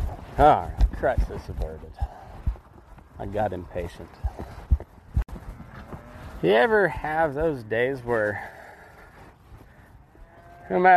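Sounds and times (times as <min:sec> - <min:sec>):
speech: 0:00.4 - 0:02.2, 0:03.2 - 0:04.5, 0:06.4 - 0:08.6, 0:10.7 - 0:10.9
cattle mooing: 0:10.1 - 0:10.9.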